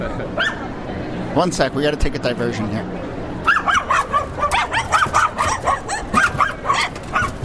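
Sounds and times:
speech: 0.0s - 0.6s, 1.3s - 3.1s
Tibetan Terrier barking and yipping: 3.4s - 7.4s.

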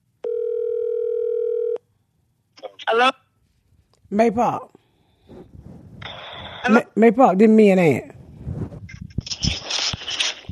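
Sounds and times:
telephone dial tone: 0.2s - 1.8s
speech: 2.9s - 3.2s, 4.1s - 4.8s, 6.6s - 8.1s.

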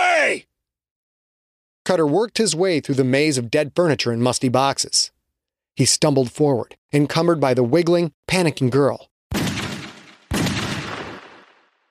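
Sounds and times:
speech: 1.9s - 5.2s, 5.8s - 9.6s
heavy gunshot blasts in a dramatized action scene: 9.3s - 11.8s.

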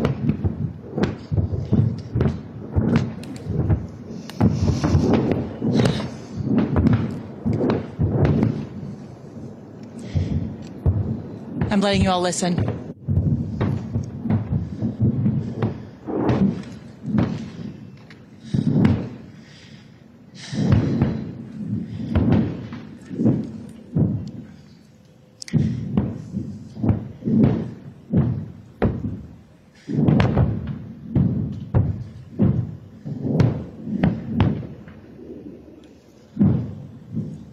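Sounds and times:
incoming rockets exploding in a heavy barrage: 0.0s - 24.9s, 25.5s - 37.5s
low rumbling: 0.0s - 37.5s
speech: 11.8s - 12.8s.

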